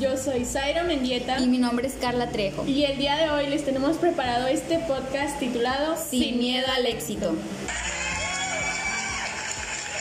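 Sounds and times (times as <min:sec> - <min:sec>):
speech: 0:00.0 - 0:07.9
crowd applauding: 0:07.7 - 0:09.9.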